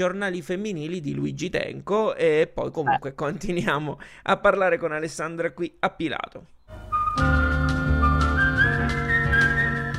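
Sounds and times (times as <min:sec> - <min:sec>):
speech: 0:00.0 - 0:06.6
bright whistled melody with gliding notes: 0:06.7 - 0:09.9
full instrumental backing music: 0:06.7 - 0:09.9.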